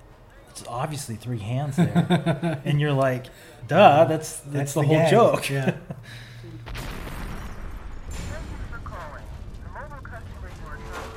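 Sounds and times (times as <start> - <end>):
speech: 0.6 - 6.8
laughter: 1.6 - 3.2, 4.8 - 6.2
loud explosion rolling into a roaring rumble: 6.6 - 11.1.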